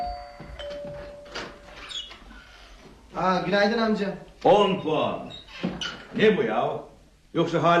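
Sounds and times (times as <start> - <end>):
electronic doorbell ringing: 0.0 - 1.8
speech: 3.2 - 5.4, 6.2 - 7.7.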